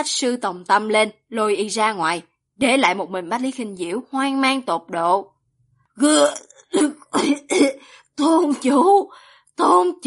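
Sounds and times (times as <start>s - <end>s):
speech: 0.0s - 5.3s, 6.0s - 10.0s
person coughing violently: 6.8s - 7.8s.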